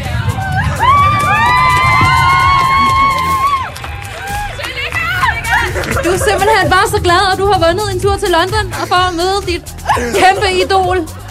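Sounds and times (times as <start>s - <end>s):
lively audience cheering and clapping: 0.2s - 7.6s
long high-pitched whooping scream: 0.3s - 5.4s
laughter: 0.4s - 11.2s
speech: 6.3s - 11.2s.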